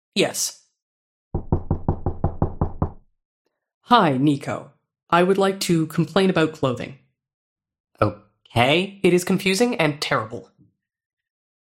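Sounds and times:
speech: 0:00.2 - 0:00.6, 0:03.9 - 0:07.0, 0:08.0 - 0:10.5
firm knocking on a door: 0:01.4 - 0:03.1.

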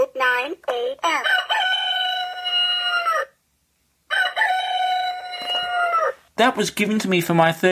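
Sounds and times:
speech: 0:00.2 - 0:01.4, 0:06.4 - 0:07.6
talking alarm clock playing rooster crow alarm: 0:01.1 - 0:03.4, 0:04.1 - 0:06.2.

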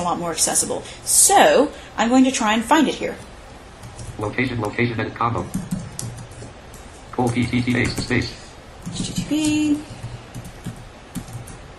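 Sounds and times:
speech: 0:00.0 - 0:03.3, 0:04.2 - 0:05.8, 0:07.2 - 0:10.0
typing on a computer keyboard: 0:05.4 - 0:11.6.

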